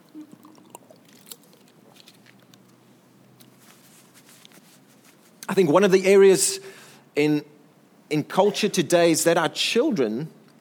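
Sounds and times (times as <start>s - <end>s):
faint swallow: 0.0s - 1.6s
person sipping a drink with wet mouth sounds: 0.0s - 2.6s
low hum: 0.0s - 10.5s
speech: 5.5s - 7.5s, 8.1s - 10.4s.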